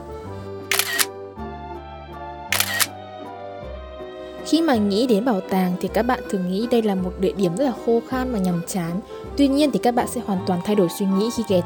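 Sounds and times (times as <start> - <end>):
single-lens reflex camera shutter bursts taking photos at a museum and library in Ha Long: 0.7 - 1.1, 2.5 - 2.9
speech: 4.5 - 11.6.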